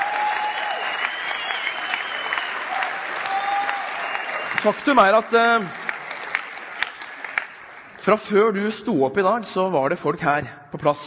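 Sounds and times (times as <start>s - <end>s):
church audience applauding: 0.0s - 8.0s
speech: 4.6s - 5.8s, 8.0s - 11.0s.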